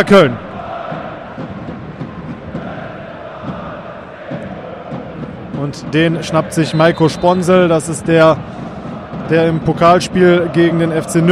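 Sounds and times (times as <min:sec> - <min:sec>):
speech: 0:00.0 - 0:00.4, 0:05.6 - 0:08.7, 0:09.3 - 0:11.3
large football stadium crowd roaring: 0:00.0 - 0:11.3.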